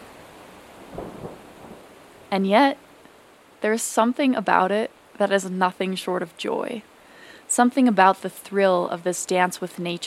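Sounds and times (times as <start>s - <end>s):
heavy rain: 0.0s - 10.0s
thunder rumbling: 0.7s - 2.0s
speech: 2.3s - 2.8s, 3.6s - 6.9s, 7.5s - 10.0s.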